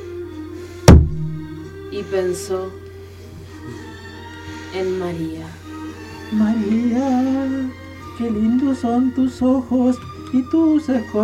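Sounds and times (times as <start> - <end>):
door slamming shut with a heavy booming thud: 0.9 - 1.6
speech: 2.0 - 2.8, 4.7 - 5.6, 6.3 - 11.2.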